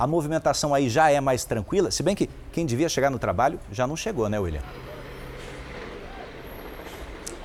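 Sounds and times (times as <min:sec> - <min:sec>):
speech: 0:00.0 - 0:04.9
bus engine rumble in a busy bus terminal: 0:04.4 - 0:07.4
bus air brake hiss: 0:04.7 - 0:07.4.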